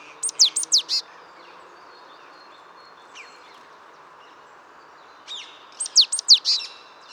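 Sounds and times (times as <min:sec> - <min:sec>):
Great tit Parus major calls: 0:00.2 - 0:01.0, 0:05.8 - 0:06.7.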